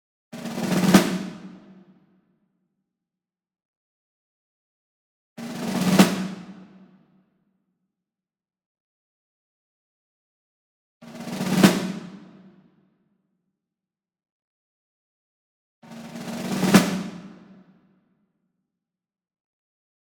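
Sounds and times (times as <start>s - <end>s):
Ludwig Black Beauty snare drum medium roll: 0.4s - 1.8s, 5.4s - 6.8s, 11.1s - 12.5s, 15.9s - 17.6s.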